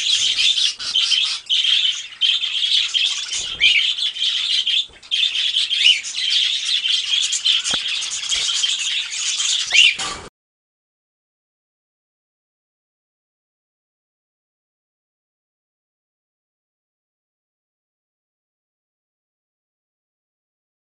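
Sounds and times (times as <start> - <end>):
flock of budgerigars chattering together: 0.0 - 10.2.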